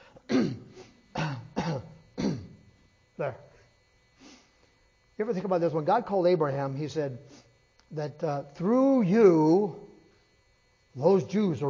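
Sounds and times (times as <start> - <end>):
coughing while the microphone is covered: 0.0 - 2.7
speech: 3.2 - 3.5, 5.2 - 9.8, 11.0 - 11.6.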